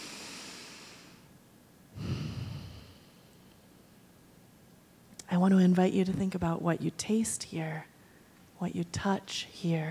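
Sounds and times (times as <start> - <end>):
person taking deep breaths of fresh mountain air: 0.0 - 1.3, 2.0 - 3.4
speech: 5.3 - 7.9, 8.6 - 9.8.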